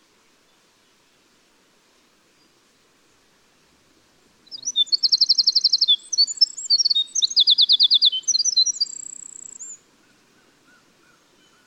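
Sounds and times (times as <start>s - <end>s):
winter wren song: 4.4s - 9.8s.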